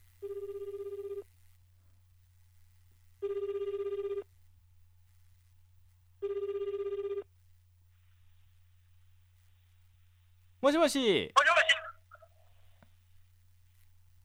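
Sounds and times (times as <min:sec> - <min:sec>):
telephone ringing on the line while a call is being placed: 0:00.2 - 0:01.2, 0:03.2 - 0:04.2, 0:06.2 - 0:07.3
speech: 0:10.7 - 0:11.4.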